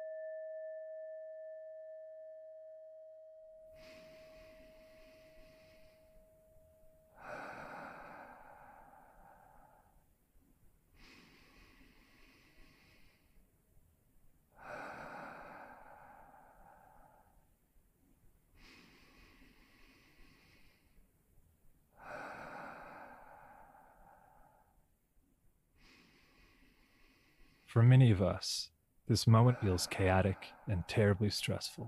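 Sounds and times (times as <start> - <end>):
slow deep breaths close to the mic: 3.6 - 31.8
speech: 27.7 - 31.8.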